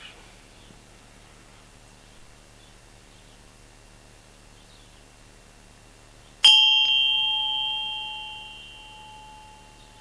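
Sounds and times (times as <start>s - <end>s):
single bell struck: 6.4s - 10.0s.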